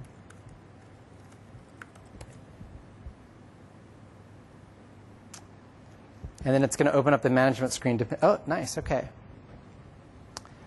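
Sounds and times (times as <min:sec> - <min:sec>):
keystrokes on a computer keyboard typing a username: 0:00.0 - 0:00.6, 0:01.2 - 0:02.4
speech: 0:06.4 - 0:09.2.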